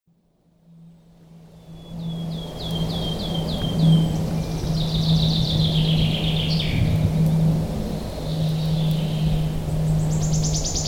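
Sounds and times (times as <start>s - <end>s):
wood warbler singing: 2.0s - 7.4s, 8.0s - 10.8s.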